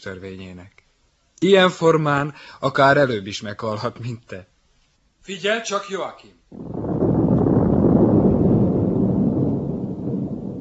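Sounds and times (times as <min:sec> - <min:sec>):
speech: 0:00.0 - 0:00.8, 0:01.4 - 0:04.5, 0:05.2 - 0:06.8
explosion rumbling roar of a city being blown up: 0:06.5 - 0:10.6.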